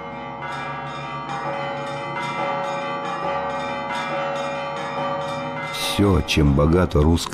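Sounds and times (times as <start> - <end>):
Russian church bells ringing: 0.0 - 7.3
speech: 6.0 - 7.3.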